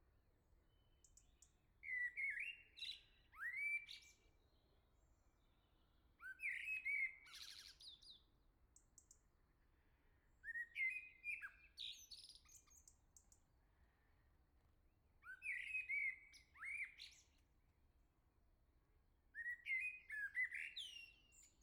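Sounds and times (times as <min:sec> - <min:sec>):
common blackbird singing in the morning at the start of summer: 0:01.1 - 0:04.2, 0:06.2 - 0:08.2, 0:10.4 - 0:12.9, 0:15.2 - 0:17.3, 0:19.4 - 0:21.6.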